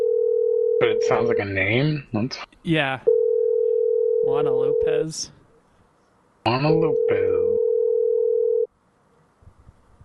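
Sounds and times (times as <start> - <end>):
telephone tone while calling a bed and breakfast phone: 0.0 - 1.1, 3.1 - 4.3, 6.9 - 8.7
speech: 0.8 - 3.1, 4.2 - 5.4, 6.4 - 7.6.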